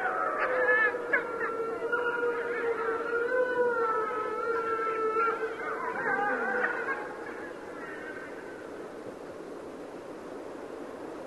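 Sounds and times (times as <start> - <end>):
Mexican wolf yips: 0.0 - 7.1
Mexican wolves howling: 0.0 - 8.2.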